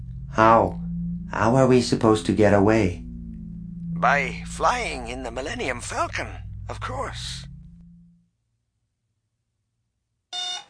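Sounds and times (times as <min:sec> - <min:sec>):
low electrical hum: 0:00.0 - 0:08.3
speech: 0:00.3 - 0:03.0, 0:04.0 - 0:07.5
harsh alarm buzzer squawking on a spaceship: 0:10.4 - 0:10.6.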